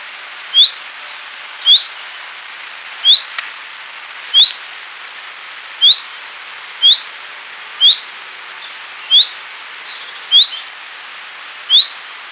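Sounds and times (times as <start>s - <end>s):
steady background hiss: 0.0s - 12.3s
common chaffinch Fringilla coelebs giving sharp upslurred whistled notes: 0.6s - 0.8s, 1.6s - 1.9s, 3.0s - 3.3s, 4.3s - 4.6s, 5.8s - 6.1s, 6.8s - 7.1s, 7.8s - 8.0s, 9.1s - 12.0s.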